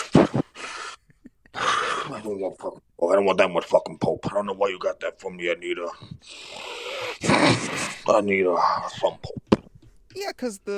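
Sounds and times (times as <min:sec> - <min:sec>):
rough voiced gasps: 0:00.0 - 0:02.5, 0:05.9 - 0:10.1
person imitating heavy wheezing breathing of a big heavy man: 0:00.0 - 0:02.6, 0:06.0 - 0:10.0
speech: 0:02.1 - 0:06.6, 0:07.2 - 0:09.4, 0:10.2 - 0:10.7.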